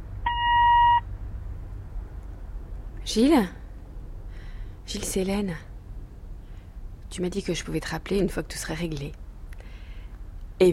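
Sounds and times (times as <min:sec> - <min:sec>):
steady electronic voicemail beep: 0:00.2 - 0:01.0
speech: 0:03.1 - 0:03.6, 0:04.9 - 0:05.7, 0:07.1 - 0:09.2.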